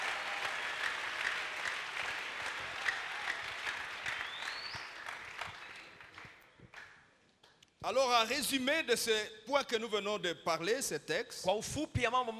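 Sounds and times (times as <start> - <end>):
congregation applauding during a church sermon: 0.0 - 7.0
speech: 7.9 - 12.3.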